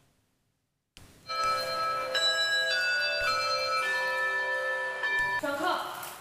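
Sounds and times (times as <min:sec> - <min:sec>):
school bell chime: 0:01.3 - 0:05.4.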